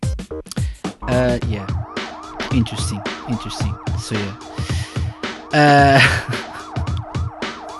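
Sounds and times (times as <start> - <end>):
speech: 0.3 - 1.8, 2.5 - 4.8, 5.5 - 6.4
siren wailing: 1.0 - 7.7
laughter: 5.6 - 6.8.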